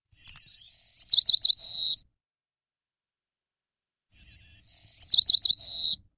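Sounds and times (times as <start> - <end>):
white-crowned sparrow singing: 0.1 - 2.0, 4.1 - 6.0.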